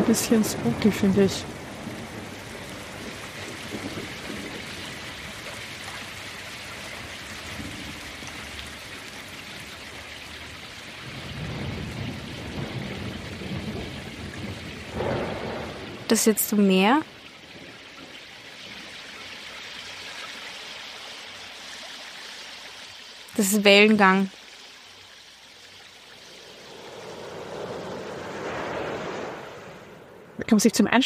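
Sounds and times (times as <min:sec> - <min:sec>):
low thunder rumbling: 0:00.0 - 0:09.7, 0:10.4 - 0:19.4, 0:26.4 - 0:31.0
steady rain: 0:00.0 - 0:31.0
speech: 0:00.1 - 0:01.6, 0:16.1 - 0:17.2, 0:23.4 - 0:24.4, 0:30.5 - 0:31.0.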